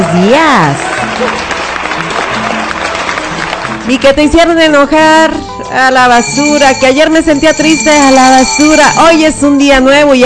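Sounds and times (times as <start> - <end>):
applause from a crowd: 0.0 - 4.0
speech: 0.1 - 1.5, 3.9 - 10.2.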